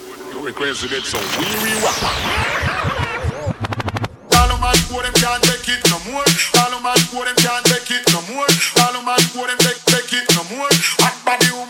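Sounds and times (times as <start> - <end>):
swirling noisy sweep: 0.0 - 8.0
speech: 0.4 - 3.2, 4.8 - 11.6
thumping beats: 3.5 - 9.3
sharp DJ machine-gun gunshot sound effects: 4.3 - 7.9.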